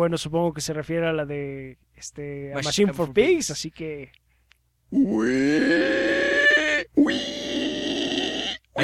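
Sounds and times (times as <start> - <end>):
speech: 0.0 - 4.2, 4.9 - 6.4
person imitating a pig squealing: 4.9 - 8.8.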